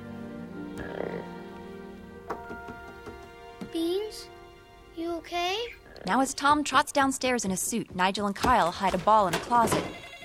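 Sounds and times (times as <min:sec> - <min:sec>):
frog croaking in a clear glass tank: 0:00.7 - 0:01.6, 0:05.8 - 0:06.2
speech: 0:06.1 - 0:10.0.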